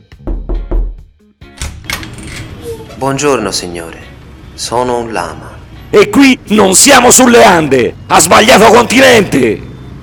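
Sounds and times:
knocking on a door: 0:00.2 - 0:01.1
door click: 0:01.5 - 0:02.5
speech: 0:02.8 - 0:09.7.

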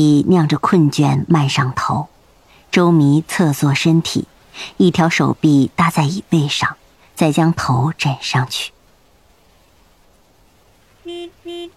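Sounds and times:
speech: 0:00.0 - 0:02.1, 0:02.7 - 0:08.8, 0:11.1 - 0:11.7
faint hum: 0:00.0 - 0:11.7
black car honking its horn beside a bus lane: 0:11.0 - 0:11.7.

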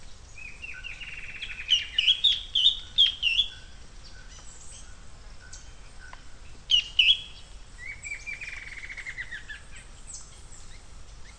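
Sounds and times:
bird song with warbled whistled notes: 0:00.0 - 0:11.3
faint low background hiss: 0:00.0 - 0:11.3.

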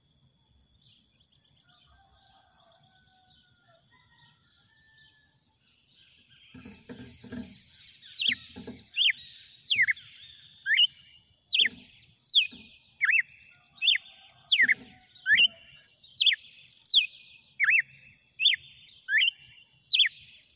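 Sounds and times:
female red-cowled cardinal whistling downslurred notes: 0:09.0 - 0:11.0, 0:11.6 - 0:13.3, 0:13.9 - 0:15.6, 0:16.2 - 0:20.5.

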